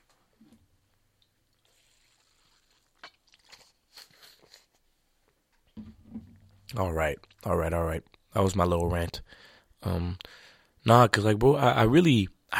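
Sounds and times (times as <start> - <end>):
person sipping and swallowing water: 1.2 - 4.6
speech: 6.7 - 12.5.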